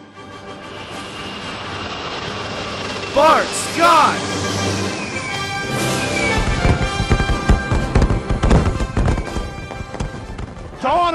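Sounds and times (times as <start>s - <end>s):
jet aircraft roaring overhead: 0.0s - 9.8s
speech: 3.2s - 4.8s.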